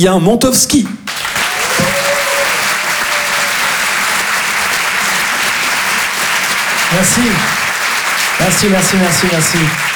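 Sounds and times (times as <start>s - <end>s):
speech: 0.0s - 1.0s, 6.9s - 7.6s, 8.4s - 9.9s
audience clapping for a performer at a live show: 0.8s - 9.9s
audience shouting and whistling at a live show: 1.3s - 4.3s.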